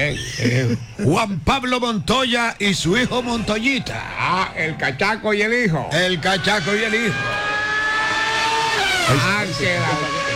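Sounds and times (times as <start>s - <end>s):
speech: 0.1s - 7.4s, 9.1s - 10.2s
racing car engines revving: 5.9s - 10.3s.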